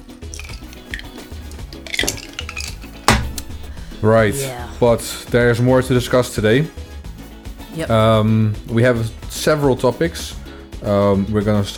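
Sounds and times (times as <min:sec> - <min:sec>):
glasses clinking together in a toast: 0:00.2 - 0:03.7
speech: 0:04.0 - 0:06.8, 0:07.8 - 0:11.7.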